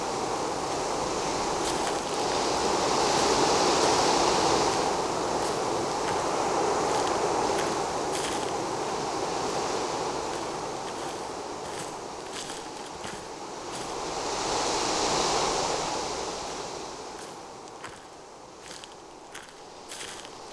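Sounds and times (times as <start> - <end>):
steady rushing wash of water: 0.0 - 20.5
boots trudging through mud and water: 1.6 - 2.5, 4.7 - 8.6, 10.3 - 14.0, 17.2 - 20.5.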